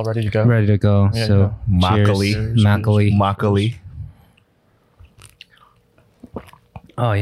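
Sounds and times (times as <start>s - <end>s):
speech: 0.0s - 3.8s, 7.0s - 7.1s
soft mouth noises: 3.8s - 7.0s
chewing with wet crunchy bites: 5.0s - 7.0s.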